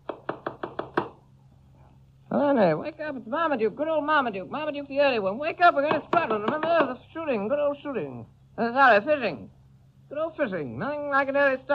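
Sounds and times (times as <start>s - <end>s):
knocking on a door: 0.0s - 1.2s
speech: 2.4s - 11.7s.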